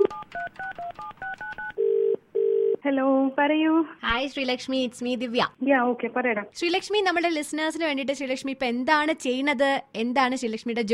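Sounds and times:
phone number dialed on a telephone keypad: 0.0s - 1.8s
speech: 2.8s - 10.9s.

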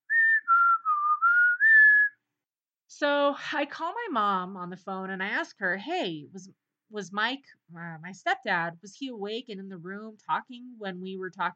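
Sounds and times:
person whistling a tune on a recording: 0.0s - 2.2s
speech: 3.0s - 11.5s.

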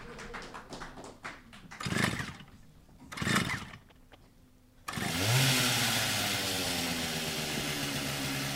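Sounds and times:
chainsaw pulled to start with sputtering tugs: 1.8s - 4.2s, 4.9s - 8.5s.

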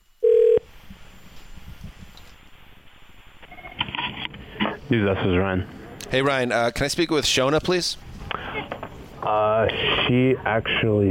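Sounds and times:
telephone beep: 0.2s - 0.6s
speech: 4.9s - 8.0s, 9.2s - 11.0s.

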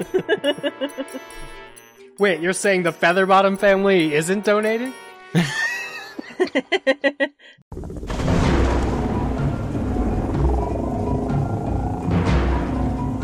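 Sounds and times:
short burst of rhythmic laughing: 0.0s - 1.6s, 5.3s - 7.5s
speech: 0.0s - 5.7s, 6.4s - 8.4s
thunder cracks rolling over the downpour: 7.8s - 13.1s.

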